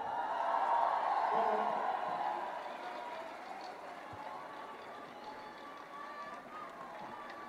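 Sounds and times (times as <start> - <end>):
audience applause for a performing music group: 0.0 - 7.4.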